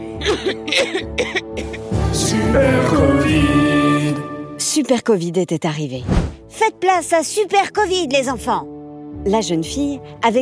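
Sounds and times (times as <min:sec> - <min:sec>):
children coughing: 0:00.0 - 0:01.9
speech: 0:00.2 - 0:10.4.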